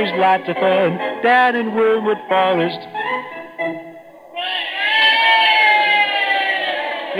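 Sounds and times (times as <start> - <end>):
speech: 0.0 - 3.8
crowd roaring at wrestling match: 4.3 - 7.1.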